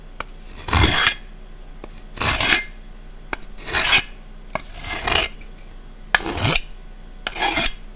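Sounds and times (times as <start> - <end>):
knife whittling wood: 0.5 - 1.2, 2.2 - 2.8, 3.6 - 5.4, 6.2 - 7.8.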